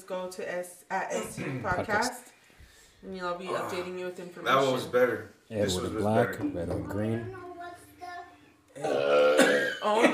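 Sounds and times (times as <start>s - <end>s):
speech: 0.1s - 2.4s, 3.0s - 7.4s, 8.8s - 10.1s
loud rough resonant burp: 8.8s - 10.0s.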